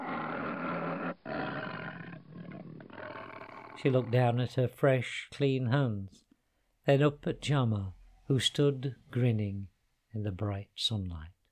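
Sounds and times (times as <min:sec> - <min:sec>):
distant lion roaring: 0:00.0 - 0:04.4
speech: 0:03.8 - 0:06.2, 0:06.9 - 0:11.3.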